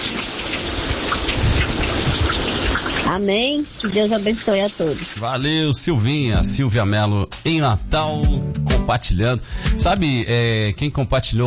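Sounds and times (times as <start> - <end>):
steady rainfall: 0.0 - 5.3
speech: 3.1 - 11.4.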